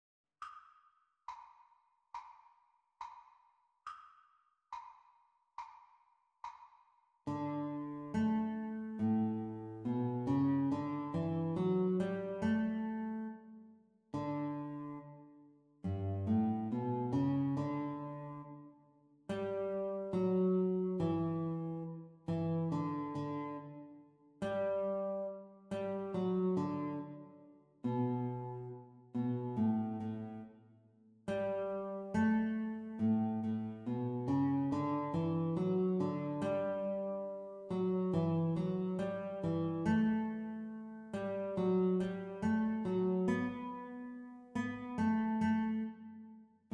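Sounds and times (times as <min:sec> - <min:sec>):
guitar duet: 0:07.3 - 0:18.7, 0:19.3 - 0:30.5, 0:31.3 - 0:46.7.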